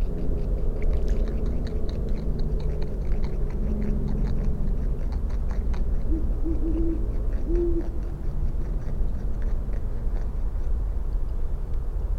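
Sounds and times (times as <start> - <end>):
beavers chewing with crunching and gnawing bites in Dyke Marsh: 0.0 - 11.6
Great Horned Owl hooting: 6.1 - 8.0.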